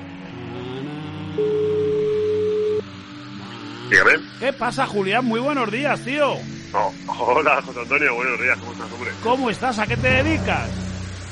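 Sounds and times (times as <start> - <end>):
low humming engine-like drone: 0.0 - 11.3
telephone call ringing tone: 1.4 - 2.8
speech: 3.9 - 10.8.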